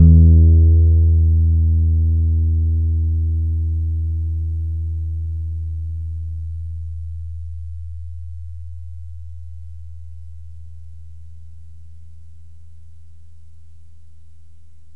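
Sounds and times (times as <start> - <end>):
double bass: 0.0 - 12.3.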